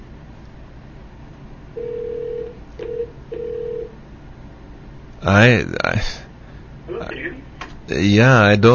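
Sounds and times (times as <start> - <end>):
telephone line dialing and ringing tones: 1.8 - 3.9
voice: 5.2 - 6.3, 6.9 - 8.7.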